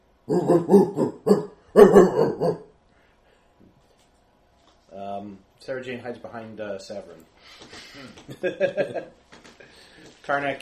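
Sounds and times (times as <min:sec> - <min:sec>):
speech: 0:00.3 - 0:02.1, 0:05.7 - 0:09.3, 0:10.3 - 0:10.6
dogs barking outside: 0:00.3 - 0:02.7.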